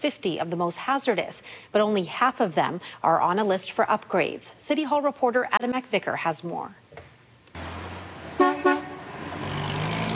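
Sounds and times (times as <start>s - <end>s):
speech: 0.0s - 6.8s
street traffic at a three-way stop intersection: 7.5s - 10.1s
vehicle engine rumbling at a three-way stop intersection: 7.6s - 10.1s
horn toots: 8.3s - 9.2s.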